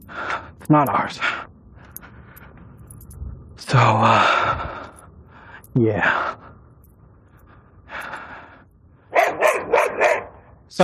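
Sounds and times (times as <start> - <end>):
speech: 0.1 - 1.4, 3.7 - 4.4, 5.8 - 6.4
puppy barking and yipping: 9.1 - 10.4.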